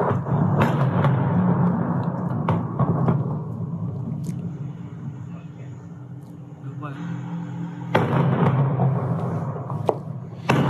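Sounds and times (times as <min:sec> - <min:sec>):
tanks firing on armored vehicles in a tank battle in Mariupol: 0:00.0 - 0:03.5, 0:07.9 - 0:09.8, 0:10.4 - 0:10.6
constant low rumbling roar: 0:00.0 - 0:10.6.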